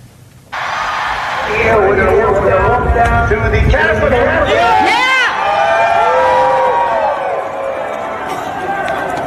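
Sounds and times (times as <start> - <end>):
large outdoor rally crowd roaring and shouting: 0.5 - 3.0, 4.0 - 9.2
individual yells from the crowd: 4.5 - 7.4.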